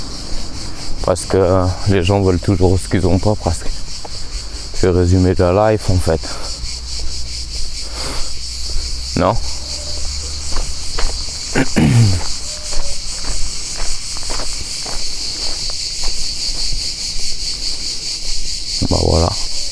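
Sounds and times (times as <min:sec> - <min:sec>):
cicadas droning in a shrill chorus: 0:00.0 - 0:19.7
speech: 0:01.0 - 0:03.8, 0:04.8 - 0:06.5, 0:09.2 - 0:09.6, 0:11.6 - 0:12.3
footsteps: 0:08.7 - 0:18.5.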